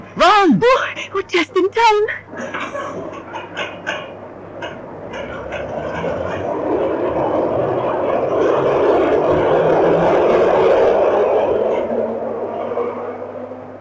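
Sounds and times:
speech: 0.2s - 2.6s
train departing from a station: 2.1s - 13.7s.

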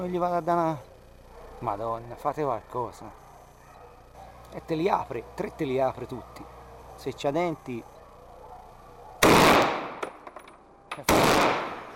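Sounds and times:
speech: 0.0s - 0.9s, 1.6s - 3.2s, 4.5s - 7.9s, 11.0s - 11.4s
hunter's gunshots finishing off a dying wild boar: 9.2s - 10.2s, 11.0s - 11.9s.

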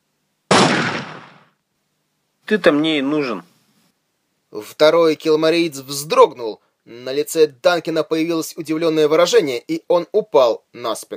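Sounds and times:
science-fiction gauss pistol gunshot: 0.5s - 1.6s
speech: 2.5s - 3.5s, 4.5s - 11.1s.

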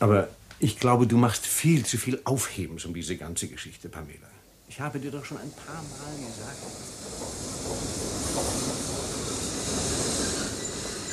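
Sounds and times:
speech: 0.0s - 7.5s
train pulling into a station platform: 5.0s - 11.1s.

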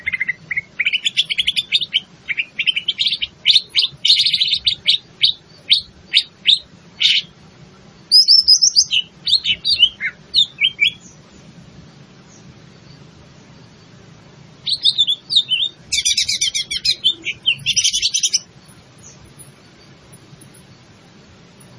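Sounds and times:
leafbird in full gacor song: 0.0s - 7.3s, 8.1s - 11.2s, 14.6s - 19.3s
faint low hum: 0.0s - 21.7s.

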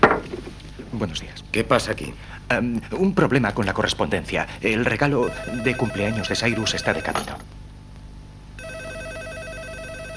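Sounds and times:
speech: 0.9s - 7.5s
office telephone ringing with electronic trill: 5.2s - 7.5s, 8.6s - 10.1s.

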